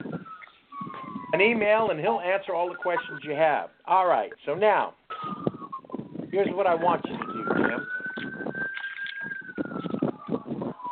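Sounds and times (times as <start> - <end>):
emergency siren wailing through a phone on speaker: 0.0 - 1.6, 6.8 - 10.9
speech: 1.4 - 5.0, 6.3 - 7.9.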